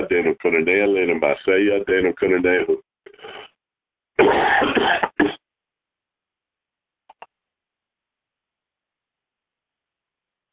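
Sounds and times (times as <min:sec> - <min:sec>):
speech: 0:00.1 - 0:03.4, 0:04.2 - 0:05.4
person coughing: 0:04.2 - 0:05.4
faint clicks: 0:07.1 - 0:07.4.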